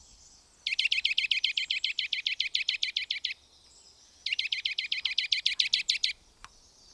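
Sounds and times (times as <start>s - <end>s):
Eurasian nuthatch calling with bright piping notes: 0.7s - 3.4s, 4.3s - 6.2s.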